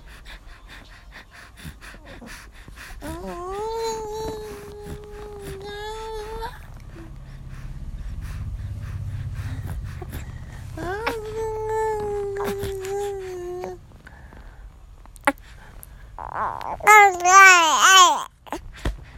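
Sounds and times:
soft low rumble: 0.0s - 19.1s
baby babbling and cooing: 3.0s - 6.7s, 10.8s - 13.8s, 16.2s - 18.6s
baby squealing: 16.2s - 18.3s.

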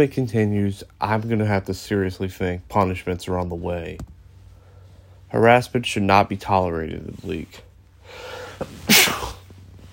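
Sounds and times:
speech: 0.0s - 4.1s, 5.3s - 9.2s
sharp inhale: 8.0s - 8.6s
person sneezing: 8.5s - 9.5s.

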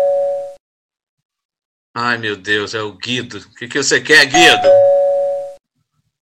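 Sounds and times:
speech: 2.0s - 4.9s
single clear doorbell chime: 4.4s - 5.6s.

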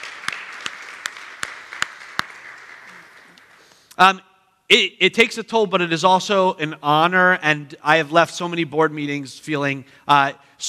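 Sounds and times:
audience applauding: 0.0s - 3.8s
speech: 4.0s - 10.6s.

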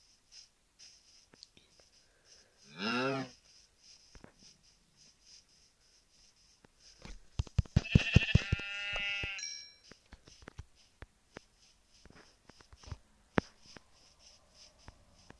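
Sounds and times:
video game sheep bleating: 2.7s - 3.3s, 7.8s - 9.4s.

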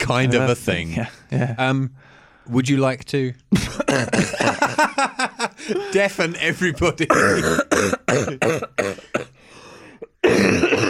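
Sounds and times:
speech: 0.0s - 9.1s, 10.2s - 10.8s
raspy throat-clearing to bring up phlegm: 3.5s - 4.6s, 7.1s - 9.4s, 10.0s - 10.8s
person coughing hard: 3.5s - 4.8s, 7.1s - 9.4s, 10.0s - 10.8s
laughter: 4.2s - 7.1s.

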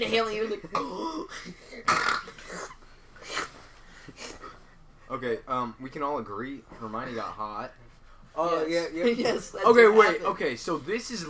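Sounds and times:
speech: 0.0s - 2.7s, 5.1s - 7.8s, 8.4s - 11.2s
person imitating a burp: 1.8s - 2.8s.

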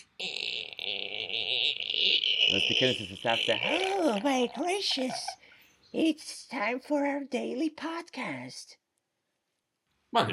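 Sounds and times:
voice imitating a long creaking door swinging open: 0.0s - 5.4s
speech: 2.5s - 8.8s, 10.1s - 10.3s.

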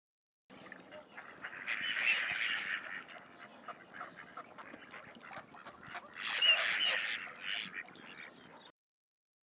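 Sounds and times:
mallard duck quacking: 1.2s - 8.4s.

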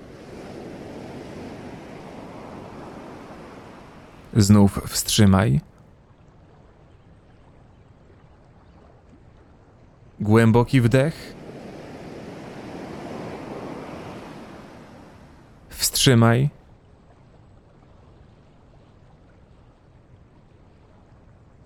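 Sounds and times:
ocean waves washing on shore: 0.0s - 5.6s, 10.2s - 21.6s
speech: 4.4s - 5.7s, 10.2s - 11.4s, 16.0s - 16.6s.

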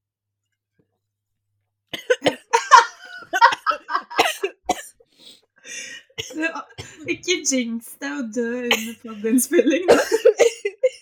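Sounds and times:
person coughing after a sip of Christmas soda: 2.0s - 4.9s, 8.7s - 9.1s, 9.9s - 11.0s
laughter: 2.5s - 4.6s
speech: 6.4s - 10.4s.

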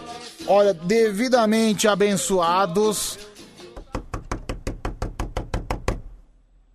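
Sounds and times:
speech: 0.5s - 3.3s
knuckles knocking on wood: 3.8s - 6.1s.

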